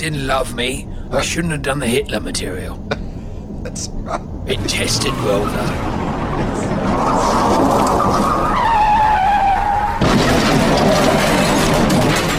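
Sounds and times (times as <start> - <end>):
speech: 0.0 - 3.0, 3.6 - 8.5
loud broad roaring noise: 2.7 - 12.3
car tires squealing while skidding to a stop: 4.5 - 12.3.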